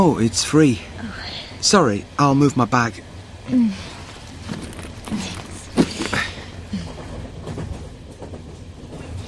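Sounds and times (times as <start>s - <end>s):
speech: 0.0s - 3.9s
low rumble of a moving train heard from inside a carriage: 0.0s - 9.2s
clunks and rattles inside a train carriage: 4.0s - 9.2s.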